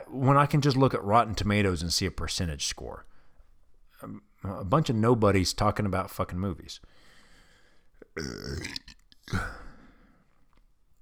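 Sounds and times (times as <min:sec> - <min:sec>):
speech: 0:00.1 - 0:03.1, 0:04.0 - 0:07.0, 0:08.2 - 0:09.6
person burping into a microphone: 0:08.0 - 0:10.0
short belch: 0:08.1 - 0:09.8.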